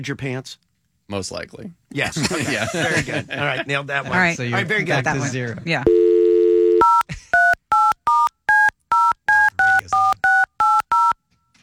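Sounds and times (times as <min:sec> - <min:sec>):
speech: 0:00.0 - 0:06.1
laughter: 0:02.0 - 0:03.9
phone keypad beeps, two-tone chirps: 0:05.9 - 0:11.2
steady telephone dial tone: 0:05.9 - 0:11.2.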